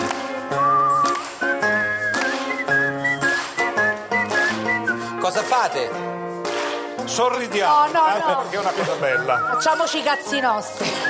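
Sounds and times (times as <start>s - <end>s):
person whistling a simple melody: 0.5s - 5.2s, 9.0s - 11.0s
speech: 5.6s - 6.2s, 7.1s - 11.0s
laughter: 8.1s - 9.8s, 10.8s - 11.0s.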